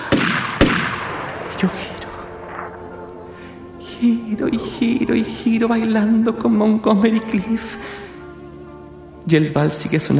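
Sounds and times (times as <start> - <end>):
gunshots: 0.0 - 3.0
speech: 1.6 - 2.0, 4.0 - 8.0, 9.3 - 10.1.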